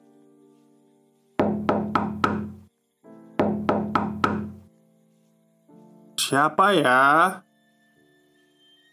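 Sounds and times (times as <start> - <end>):
firm knocking on a door: 1.4 - 2.7, 3.4 - 4.7
speech: 6.3 - 7.5.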